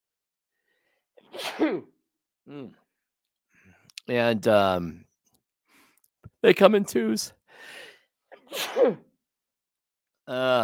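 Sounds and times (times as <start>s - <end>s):
loud sneeze: 1.2s - 2.0s, 8.3s - 9.1s
speech: 1.4s - 2.8s, 4.1s - 5.1s, 6.4s - 7.8s, 8.5s - 9.1s, 10.3s - 10.6s.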